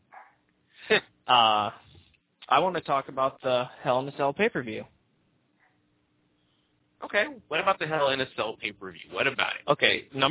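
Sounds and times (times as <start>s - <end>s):
dog barking with a whining tone: 0.1s - 0.4s
speech: 0.9s - 1.8s, 2.5s - 4.9s, 7.1s - 10.2s.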